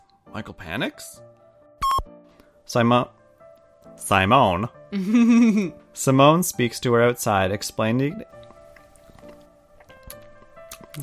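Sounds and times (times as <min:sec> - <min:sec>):
speech: 0:00.4 - 0:01.4, 0:02.7 - 0:03.2, 0:03.9 - 0:08.4
laughter: 0:05.0 - 0:05.7
wet squishy saliva mouth noises with smacking clicks and slurps: 0:08.4 - 0:11.0.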